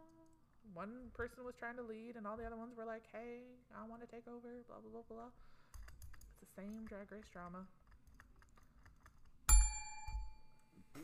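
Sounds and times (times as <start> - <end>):
speech: 0.7 - 5.6, 6.4 - 7.8
hand bell struck: 9.5 - 10.7.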